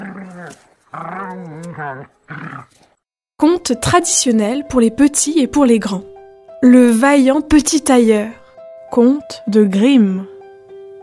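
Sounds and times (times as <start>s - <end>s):
wolf pack growling: 0.0s - 3.0s
speech: 0.9s - 10.3s.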